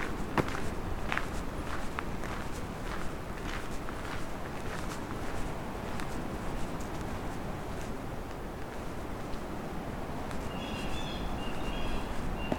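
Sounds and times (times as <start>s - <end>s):
footsteps crunching on a trail: 0.0s - 12.5s
blue jays calling: 10.4s - 12.5s.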